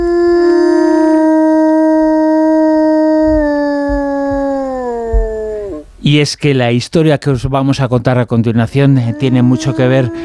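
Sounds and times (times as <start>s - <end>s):
wolf howling to call its family: 0.0s - 5.8s, 9.0s - 10.2s
speech: 6.1s - 10.2s.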